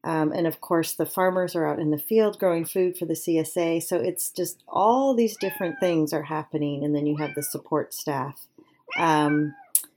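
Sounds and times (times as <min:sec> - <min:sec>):
speech: 0:00.0 - 0:09.6
pet cat meowing: 0:05.4 - 0:06.0, 0:07.2 - 0:07.6, 0:08.9 - 0:09.8.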